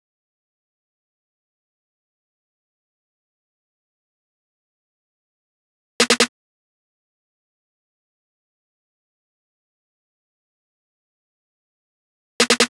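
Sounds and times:
snare drum fill loop: 6.0 - 6.3, 12.4 - 12.7.

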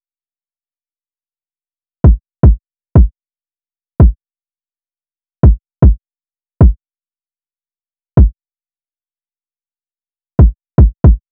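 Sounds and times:
kick drum loop at 115 BPM: 2.1 - 3.1, 5.5 - 6.0, 10.4 - 11.3.

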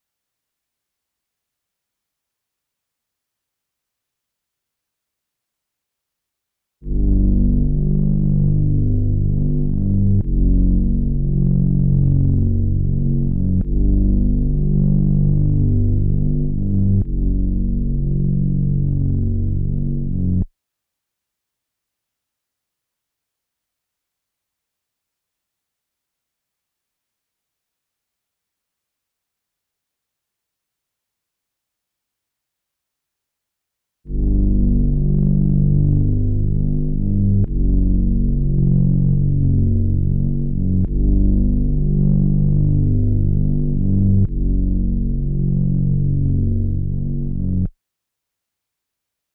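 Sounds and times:
141 BPM B minor bass loop: 6.9 - 20.4, 34.1 - 47.7.

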